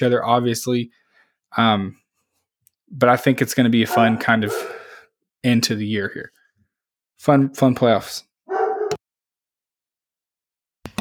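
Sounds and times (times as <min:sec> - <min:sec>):
speech: 0:00.0 - 0:02.0, 0:02.9 - 0:04.8, 0:05.4 - 0:06.4, 0:07.2 - 0:08.3
dogs barking: 0:03.8 - 0:05.0, 0:08.5 - 0:09.0.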